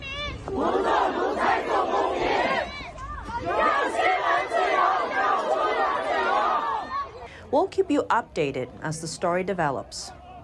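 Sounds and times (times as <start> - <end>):
large protest crowd in Beijing China chanting demands: 0.2 - 7.3
speech: 7.5 - 10.2.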